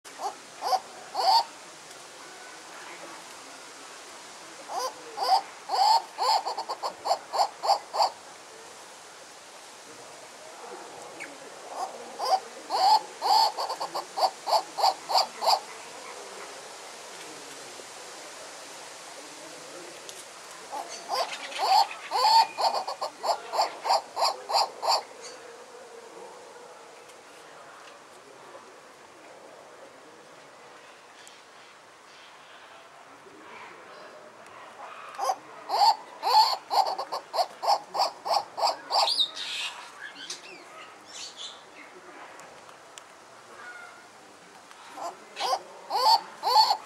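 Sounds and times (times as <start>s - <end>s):
turaco singing: 0.0s - 1.5s, 4.7s - 8.2s, 11.2s - 16.2s, 20.6s - 25.5s, 35.2s - 41.5s, 44.9s - 46.8s.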